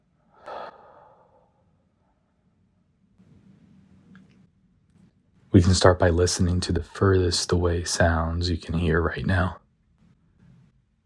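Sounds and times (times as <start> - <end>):
deep breathing during a relaxation exercise: 0.2 - 2.5
speech: 5.5 - 9.6.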